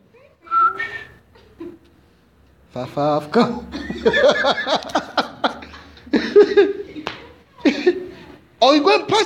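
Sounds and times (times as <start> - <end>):
person whistling to call someone: 0.5 - 1.2
laughter: 1.2 - 2.0, 3.4 - 8.4
speech: 2.8 - 5.0.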